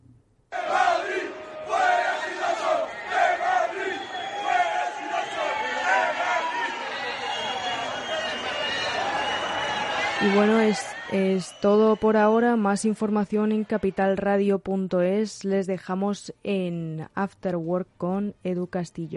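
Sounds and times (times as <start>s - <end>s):
large protest crowd chanting and shouting rhythmic slogans: 0.5s - 10.1s
speech: 10.2s - 19.1s.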